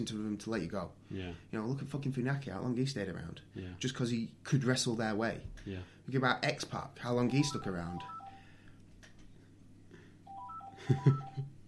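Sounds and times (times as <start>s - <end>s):
speech: 0.0s - 8.2s, 10.9s - 11.5s
house phone ringing with electronic stepped-pitch tone: 7.2s - 8.6s, 10.3s - 11.5s.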